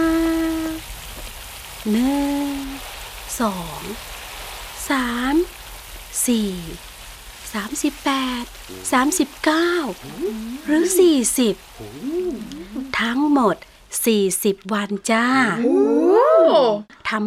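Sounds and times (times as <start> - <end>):
heavy rain pouring down: 0.0 - 14.1
speech: 1.8 - 2.6, 3.4 - 4.2, 4.9 - 5.6, 6.2 - 6.9, 7.5 - 17.2
wailing voice-like cries: 10.0 - 13.0, 15.5 - 16.8.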